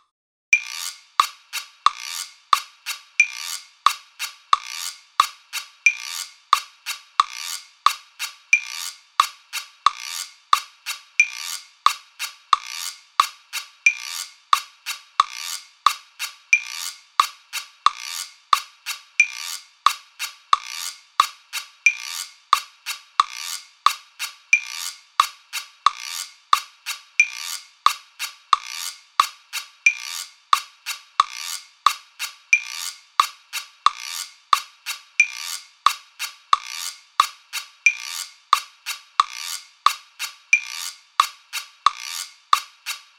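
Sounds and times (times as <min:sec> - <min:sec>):
guiro: 0:00.6 - 0:43.1.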